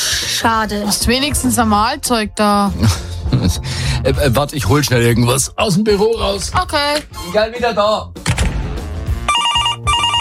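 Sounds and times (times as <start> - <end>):
speech: 0.4 - 8.2
telephone bell ringing: 9.3 - 10.2.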